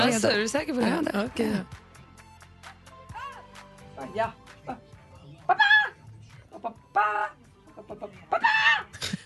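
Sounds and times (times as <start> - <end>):
speech: 0.0 - 1.8, 4.0 - 4.9, 6.6 - 9.2
person clucking like a chicken while playing a mobile game: 5.5 - 8.8.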